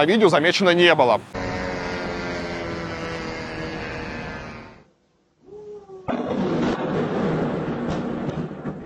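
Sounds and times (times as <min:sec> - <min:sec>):
speech: 0:00.0 - 0:01.4
drone propeller buzz: 0:01.4 - 0:04.9
harsh roaring burst of noise: 0:01.4 - 0:04.9, 0:06.1 - 0:08.8.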